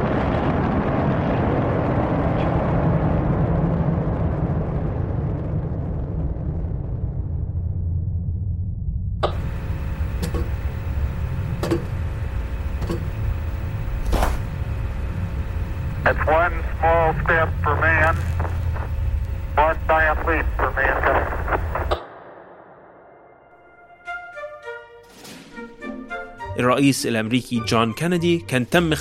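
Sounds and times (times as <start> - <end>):
rocket engine roar at launch ignition: 0.0 - 23.7
faint steady electronic tone: 9.2 - 22.1
speech: 26.8 - 28.9.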